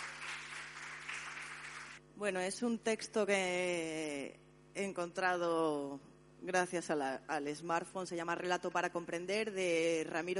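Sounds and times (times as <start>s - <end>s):
audience applause at a live reading event: 0.0s - 2.0s
speech: 2.2s - 10.3s.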